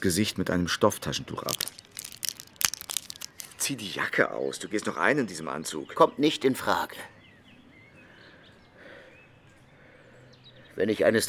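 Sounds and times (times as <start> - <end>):
speech: 0.0 - 1.9, 3.7 - 7.2, 10.8 - 11.2
blister pack of pills crinkling while handled: 1.4 - 3.7
plastic rustling: 1.4 - 3.7.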